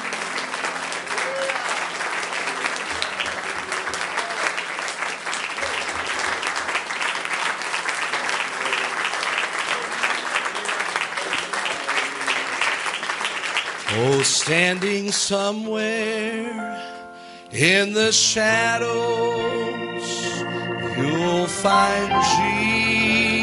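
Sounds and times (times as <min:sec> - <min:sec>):
large audience clapping hands in praise: 0:00.0 - 0:15.4
speech: 0:14.5 - 0:16.9, 0:17.5 - 0:23.3.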